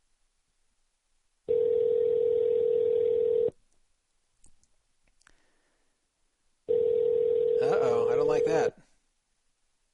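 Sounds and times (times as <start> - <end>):
outgoing phone call electronic ringback tone: 1.5 - 3.6, 6.7 - 8.6.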